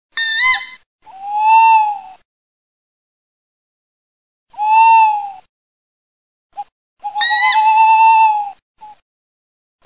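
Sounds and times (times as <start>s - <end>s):
tawny owl and little owl sounds: 0.1s - 2.2s, 4.5s - 5.5s, 6.6s - 9.0s.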